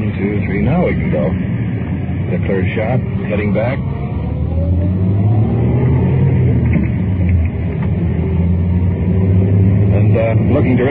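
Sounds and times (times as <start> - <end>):
car engine revving while accelerating through a U-turn: 0.0 - 10.8
speech: 0.2 - 1.6, 2.3 - 4.0, 10.4 - 10.8.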